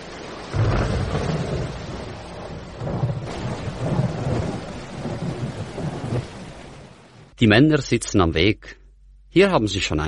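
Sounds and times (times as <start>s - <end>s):
deep rolling thunder: 0.0s - 7.3s
steady wash of rain: 0.0s - 8.5s
speech: 7.4s - 10.0s.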